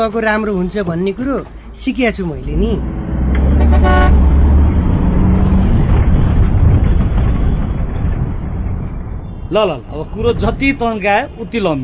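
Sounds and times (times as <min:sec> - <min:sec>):
speech: 0:00.0 - 0:03.0, 0:09.5 - 0:11.8
heavy vehicle engine rumble: 0:00.0 - 0:11.8
vehicle horn honking as the vehicle arrives: 0:03.6 - 0:04.2.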